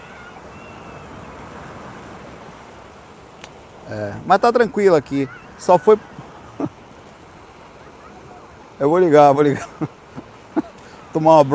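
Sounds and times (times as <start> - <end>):
sea surf rolling in with a rising tide: 0.0 - 11.5
faint whistling tone: 0.1 - 1.2
speech: 3.9 - 6.2, 8.8 - 10.0, 11.2 - 11.5
laughter: 5.8 - 6.8, 9.4 - 11.0.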